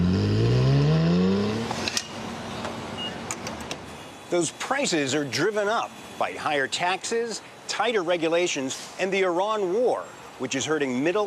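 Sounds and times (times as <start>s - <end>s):
sports car engine revving with crackles and pops: 0.0s - 1.9s
speech: 4.3s - 11.2s.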